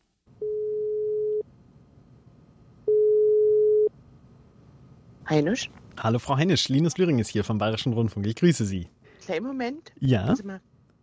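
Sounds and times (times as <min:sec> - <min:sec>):
faint low hum: 0:00.0 - 0:11.0
telephone ringback tone electronic beep: 0:00.4 - 0:01.4, 0:02.9 - 0:03.9
speech: 0:05.3 - 0:10.7.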